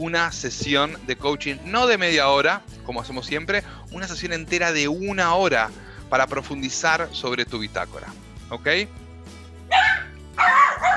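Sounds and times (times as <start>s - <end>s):
speech: 0.0s - 9.0s
female dog barking: 9.7s - 10.9s.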